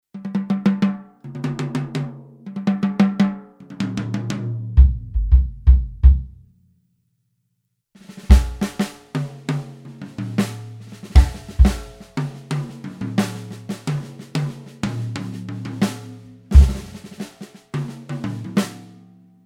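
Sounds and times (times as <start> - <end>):
bebop jazz drums: 2.6 - 6.5, 8.0 - 19.0.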